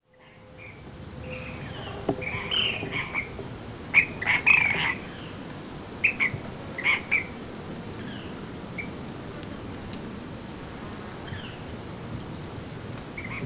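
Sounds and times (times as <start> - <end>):
steady low background noise: 0.0 - 13.4
ash-throated flycatcher calls: 0.2 - 5.4, 6.0 - 7.4.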